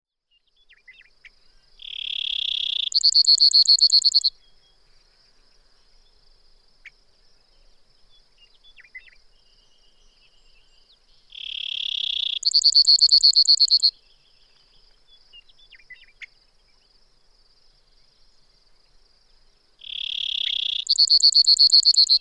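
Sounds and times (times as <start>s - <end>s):
Brewer's Sparrow singing: 1.8s - 4.6s, 8.5s - 16.4s, 19.8s - 22.1s.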